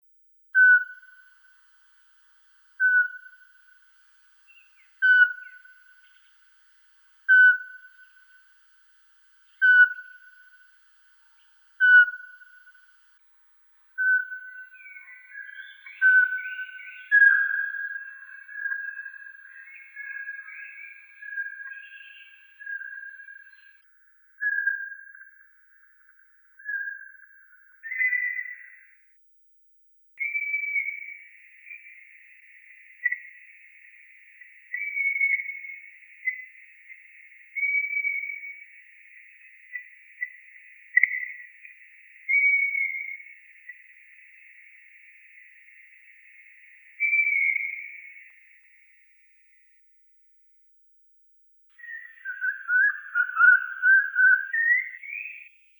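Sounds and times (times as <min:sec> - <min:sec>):
Glaucidium passerinum calling: 0:00.6 - 0:13.0, 0:14.0 - 0:23.8, 0:24.4 - 0:28.9, 0:30.2 - 0:48.7, 0:51.7 - 0:55.6.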